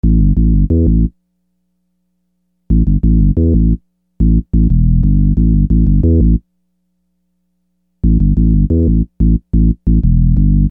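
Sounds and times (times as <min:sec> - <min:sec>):
hip-hop street beat with groove bass: 0:00.0 - 0:01.1, 0:02.7 - 0:06.4, 0:08.0 - 0:10.6.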